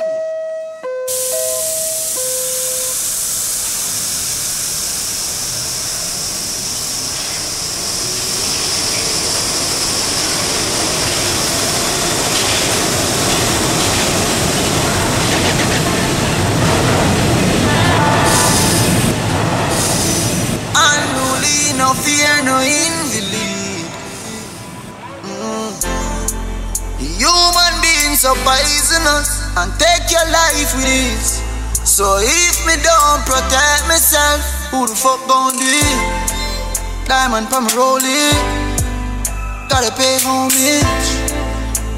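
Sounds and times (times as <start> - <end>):
subway chime tones: 0.0 - 3.0, 39.2 - 40.8
express subway train rumbling along the rails: 1.1 - 41.9
speech: 32.0 - 36.3, 37.1 - 38.6, 39.7 - 41.2.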